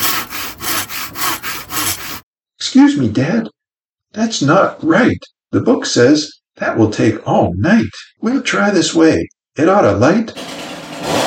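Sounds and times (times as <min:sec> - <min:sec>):
wood rubbing against wood to start a campfire: 0:00.0 - 0:02.2
speech: 0:02.7 - 0:10.5.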